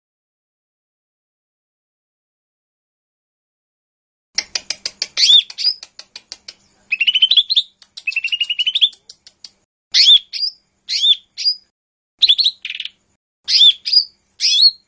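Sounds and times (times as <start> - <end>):
Lesser green leafbird ticking notes, whistled slurs and trills: 4.4 - 14.8.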